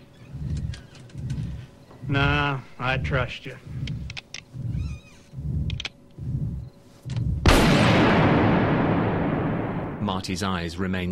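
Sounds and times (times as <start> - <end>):
rhythmic low wailing sounds: 0.0 - 6.7
speech: 2.1 - 3.8, 10.1 - 11.0
pistol shot: 7.4 - 10.0.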